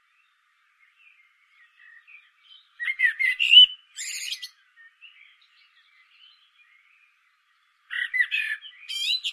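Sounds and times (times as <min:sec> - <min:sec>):
common blackbird Turdus merula singing a mellow warbled phrase: 0:00.0 - 0:09.3.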